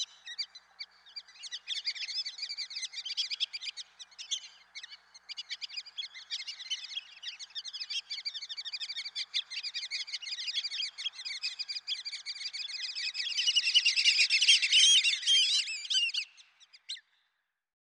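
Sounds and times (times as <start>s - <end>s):
black-bellied whistling duck calls with chattering notes and slurred whistles: 7.9s - 17.0s.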